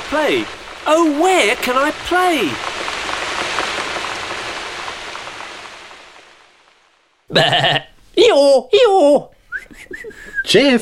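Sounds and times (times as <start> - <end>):
steady rain pattering: 0.0 - 10.8
speech: 0.1 - 2.8, 7.3 - 10.8
person imitating sheep or goat bleats: 7.3 - 8.0.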